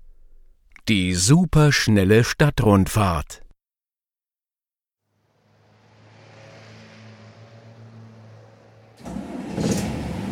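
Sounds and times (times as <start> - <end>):
speech: 0.9 - 3.4
bus engine idling and revving as the bus sets off on a city tour: 5.2 - 10.3.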